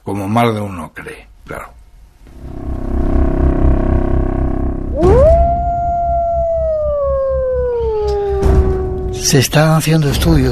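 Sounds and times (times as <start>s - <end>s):
speech: 0.1s - 1.8s, 9.2s - 10.5s
low rumbling background: 1.2s - 9.4s
lone wolf howling in Yellowstone: 4.9s - 9.3s.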